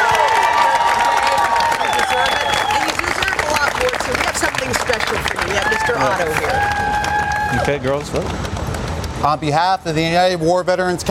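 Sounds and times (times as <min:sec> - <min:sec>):
crowd cheering and whooping on an outdoor plaza: 0:00.0 - 0:03.4, 0:05.4 - 0:07.9
crowd clapping on an outdoor plaza: 0:00.0 - 0:09.7
speech: 0:07.7 - 0:08.6, 0:09.2 - 0:11.0.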